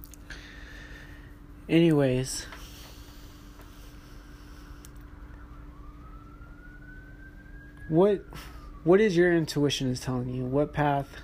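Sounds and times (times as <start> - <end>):
speech: 1.7 - 2.6, 7.9 - 11.2
fire engine siren wailing: 2.3 - 11.2.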